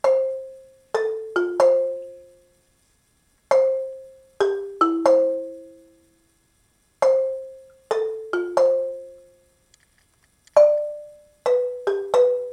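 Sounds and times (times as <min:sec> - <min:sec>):
marimba: 0:00.0 - 0:02.6, 0:03.5 - 0:06.2, 0:07.0 - 0:09.6, 0:10.6 - 0:12.5.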